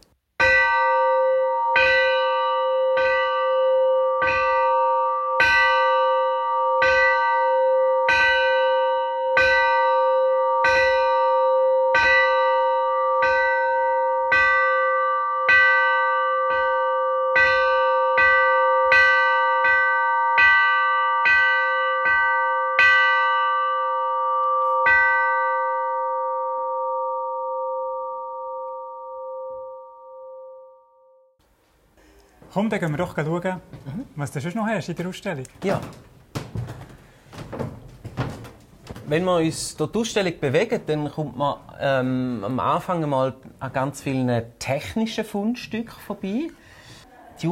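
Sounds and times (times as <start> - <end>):
original ship's bell ringing: 0.4 - 31.4
speech: 32.6 - 36.1, 39.1 - 46.7, 47.4 - 47.5.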